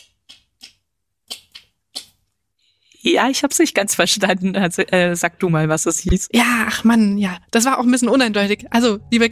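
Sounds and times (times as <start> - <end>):
person making mouth clicks imitating sperm whale clicks: 0.0 - 2.3
speech: 3.0 - 9.3.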